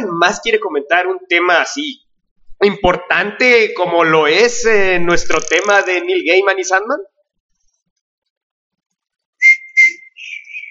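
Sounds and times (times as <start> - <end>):
speech: 0.2 - 2.0, 2.6 - 7.1
person whistling: 9.4 - 10.6.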